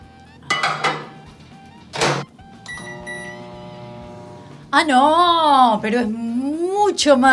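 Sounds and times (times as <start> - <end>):
microwave oven running with humming drone: 0.0 - 6.0
microwave oven door clunking open: 1.9 - 3.3
speech: 4.7 - 6.3, 6.9 - 7.3.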